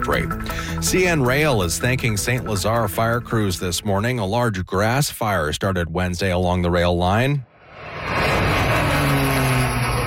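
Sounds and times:
speech: 0.0 - 7.5
small propeller crop duster plane droning overhead: 7.5 - 10.0.

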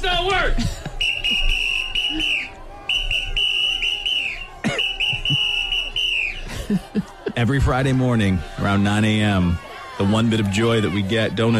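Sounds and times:
laughter: 0.1 - 2.7, 3.8 - 11.5
noisy crowd chanting on a picket line during a strike: 0.2 - 11.5
shrill whistle blasts at a strike picket line: 1.0 - 6.5
speech: 7.4 - 11.5.

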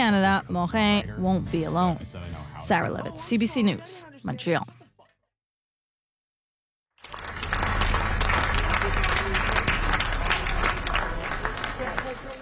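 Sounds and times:
speech: 0.1 - 4.8
large crowd of fans applauding outdoors in a street: 7.0 - 12.4.

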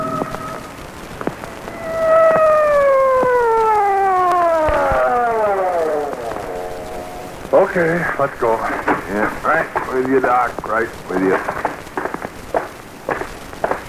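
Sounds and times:
rain-like hiss: 0.0 - 13.8
emergency siren wailing: 1.4 - 8.2
speech: 7.7 - 11.6.

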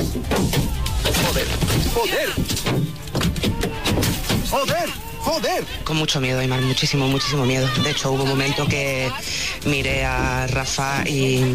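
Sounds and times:
sharp bangs and thuds of stones and punches striking a car: 0.0 - 5.0
loud chaotic crowd shouting: 0.0 - 10.2
speech: 2.0 - 2.8, 4.5 - 11.5.

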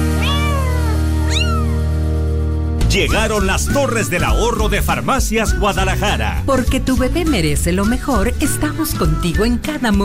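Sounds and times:
cat meowing: 0.2 - 1.9
speech: 2.9 - 10.0.

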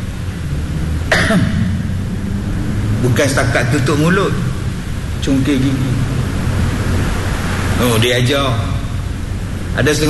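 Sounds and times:
steady low hum: 0.0 - 10.0
single sharp cough: 1.1 - 1.7
speech: 1.3 - 1.6, 3.0 - 4.5, 5.2 - 6.1, 7.8 - 8.7, 9.8 - 10.0.

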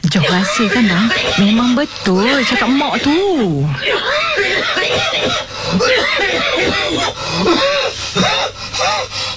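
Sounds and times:
speech: 0.1 - 9.3
laughter: 0.2 - 8.3
person coughing harshly: 0.6 - 3.1, 3.8 - 9.1
strained breathy gasps: 5.1 - 6.0, 6.6 - 9.3.

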